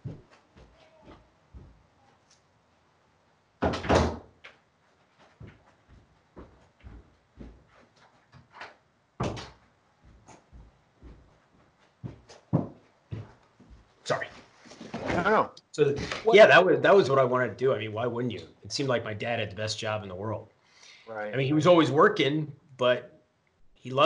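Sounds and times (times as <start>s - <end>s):
door swinging and thudding shut: 3.6s - 4.3s
speech: 15.2s - 20.5s, 21.1s - 23.1s, 23.8s - 24.0s.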